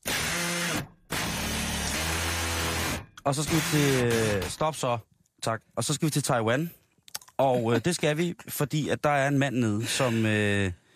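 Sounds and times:
power drill whirring: 0.0 - 4.6
speech: 3.2 - 6.8, 7.4 - 10.8.

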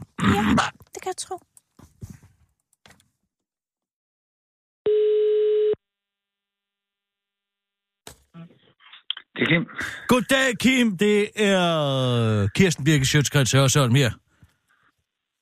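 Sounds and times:
speech: 0.6 - 1.5, 9.4 - 14.3
telephone ringback tone while placing a call: 4.9 - 5.8.

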